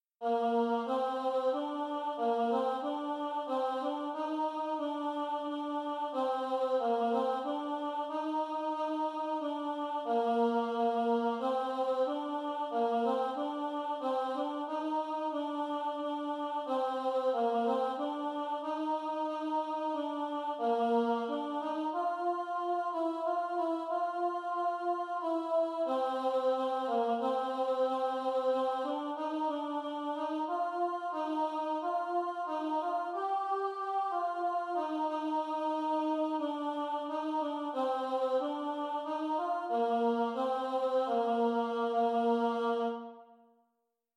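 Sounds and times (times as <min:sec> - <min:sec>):
solo alto voice: 0:00.2 - 0:43.3.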